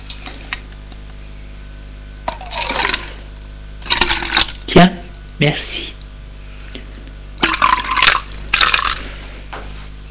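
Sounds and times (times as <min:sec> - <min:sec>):
steady low hum: 0:00.0 - 0:10.0
orange juice poured from a bottle into glasses: 0:02.3 - 0:03.2, 0:03.8 - 0:04.6, 0:07.4 - 0:09.0
speech: 0:04.8 - 0:06.0.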